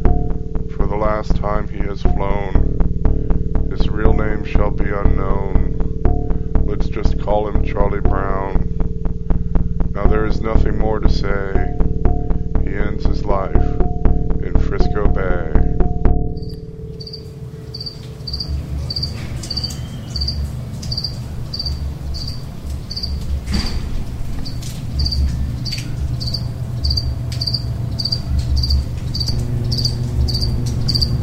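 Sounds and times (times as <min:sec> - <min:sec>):
low rumbling hum: 0:00.0 - 0:31.2
speech: 0:01.0 - 0:02.8, 0:03.7 - 0:05.8, 0:06.7 - 0:08.7, 0:10.0 - 0:11.9, 0:12.7 - 0:13.9, 0:14.5 - 0:15.7
cricket chirping: 0:16.4 - 0:31.2.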